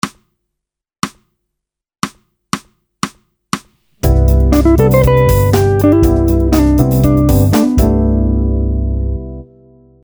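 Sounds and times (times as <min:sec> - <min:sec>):
chord tones and tensions: 0:04.0 - 0:09.8.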